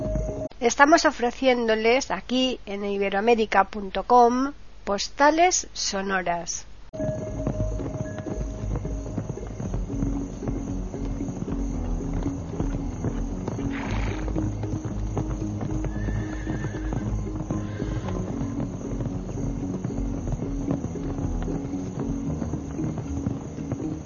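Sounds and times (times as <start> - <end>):
horse hooves clip-clopping: 0.0 - 0.5, 7.0 - 24.0
speech: 0.6 - 7.2
low rumbling background: 7.0 - 24.0
horse whinnying: 13.5 - 18.9.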